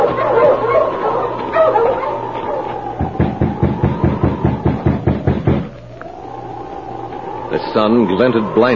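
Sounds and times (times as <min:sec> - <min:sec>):
team of sled dogs barking and whining on snow: 0:00.0 - 0:08.7
fierce wind: 0:02.2 - 0:08.7
speech: 0:07.7 - 0:08.7.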